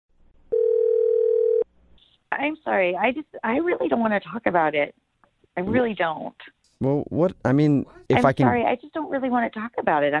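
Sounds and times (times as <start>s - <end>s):
telephone dial tone: 0.5s - 1.7s
speech: 2.3s - 5.0s, 5.6s - 10.1s.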